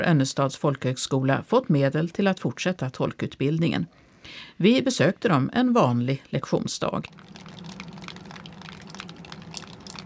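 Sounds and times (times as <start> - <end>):
speech: 0.0 - 7.7
running meltwater: 7.0 - 10.0
water dripping from a roof at Önnestad folk high school in spring: 7.1 - 10.0.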